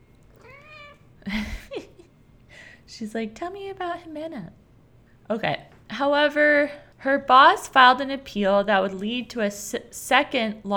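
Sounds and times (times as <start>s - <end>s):
cat meowing: 0.3s - 1.1s
speech: 3.0s - 4.6s, 5.3s - 10.7s.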